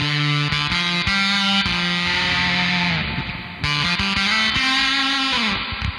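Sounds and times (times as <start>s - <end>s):
electric guitar chords through a fuzz pedal with heavy reverb: 0.0s - 5.9s.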